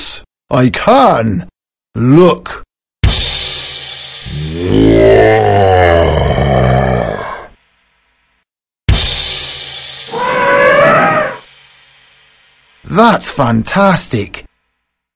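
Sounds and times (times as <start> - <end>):
speech: 0.5 - 2.6, 4.3 - 6.8, 12.9 - 14.5
lion roaring loudly: 4.3 - 7.6, 10.1 - 11.4.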